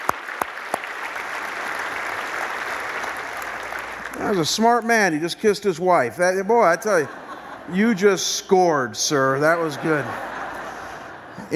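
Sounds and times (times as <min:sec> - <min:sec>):
church audience applauding: 0:00.0 - 0:05.2
speech: 0:04.2 - 0:10.3
laughter: 0:06.3 - 0:11.5.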